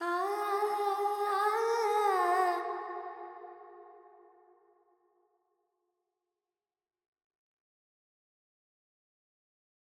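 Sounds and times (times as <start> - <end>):
Carnatic female vocal alap in a pentatonic scale: 0.0 - 3.1.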